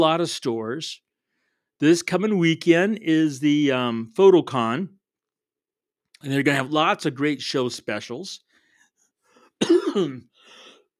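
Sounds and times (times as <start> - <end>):
speech: 0.0 - 1.1, 1.8 - 5.0, 6.2 - 8.4, 9.6 - 10.3
person with a frog in the throat clearing throat: 9.6 - 10.3
person with a frog in the throat coughing raspily: 9.6 - 10.8.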